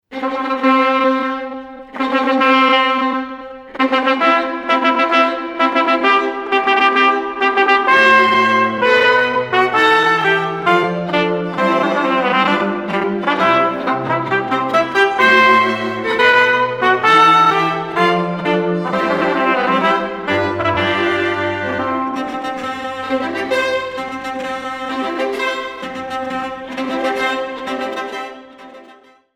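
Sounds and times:
classical string quartet playing a wedding march: 0:00.1 - 0:29.2.

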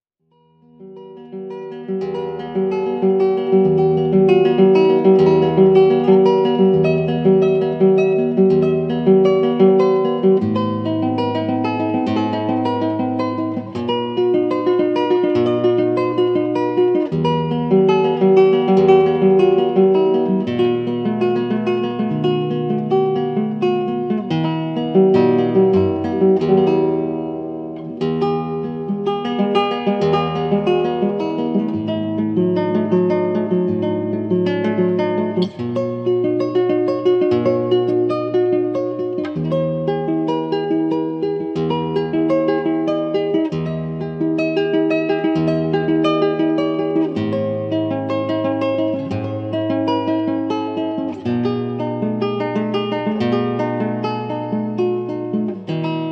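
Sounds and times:
Spanish ballad on guitar: 0:00.3 - 0:56.1.

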